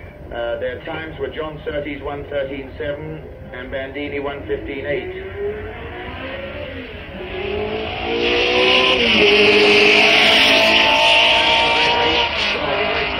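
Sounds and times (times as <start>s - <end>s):
speech: 0.3s - 6.4s, 7.4s - 9.6s
vintage 1962 Lola Climax fuel-injected racing car engine passing: 4.2s - 13.1s.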